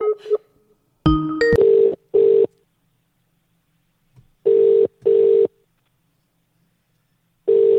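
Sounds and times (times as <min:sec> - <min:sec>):
electronic telephone ringing tones: 0:01.1 - 0:02.5, 0:04.5 - 0:05.5, 0:07.5 - 0:07.7.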